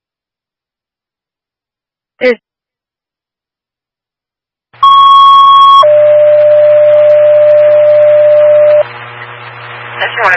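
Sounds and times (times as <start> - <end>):
fire dispatch paging tones over a radio: 4.8 - 8.8
radio static and hum: 4.8 - 10.3.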